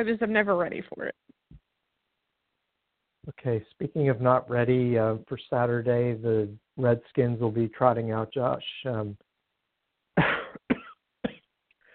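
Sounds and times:
speech: 0.0 - 1.2, 3.2 - 9.2
person coughing: 10.2 - 11.5.

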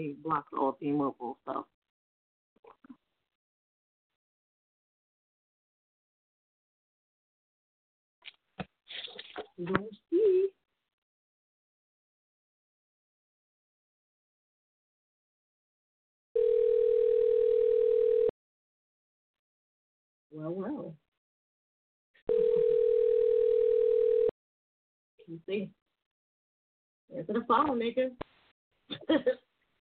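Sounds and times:
speech: 0.0 - 1.8, 9.4 - 10.5, 20.4 - 21.0, 25.3 - 25.8, 27.1 - 28.3, 28.9 - 29.5
outgoing call ringback tone: 16.4 - 18.3, 22.3 - 24.3.

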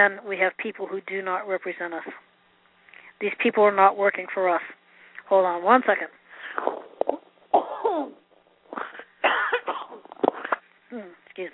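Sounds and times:
speech: 0.0 - 2.3, 3.2 - 7.2, 7.9 - 8.9, 10.9 - 11.5
man coughing in harsh wet bursts: 7.5 - 10.6.

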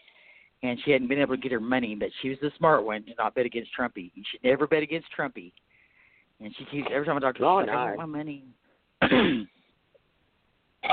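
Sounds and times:
speech: 0.6 - 5.6, 6.4 - 9.6
harsh raspy cough: 9.0 - 9.6.

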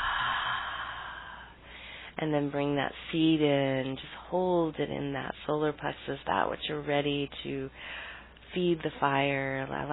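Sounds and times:
slow deep breath in and out during a guided breathing exercise: 0.0 - 2.2, 7.8 - 8.4
speech: 2.2 - 9.9.

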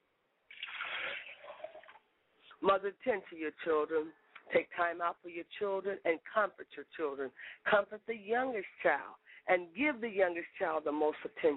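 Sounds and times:
liquid poured as a libation in a ceremony: 0.5 - 2.1
speech: 2.6 - 11.5.

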